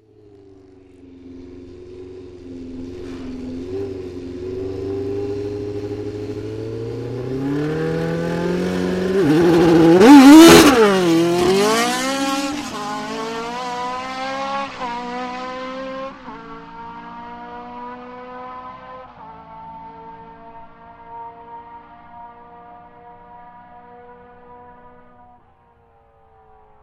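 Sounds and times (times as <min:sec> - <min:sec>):
Formula 1 racing cars pulling off the start line: 0:02.3 - 0:25.2.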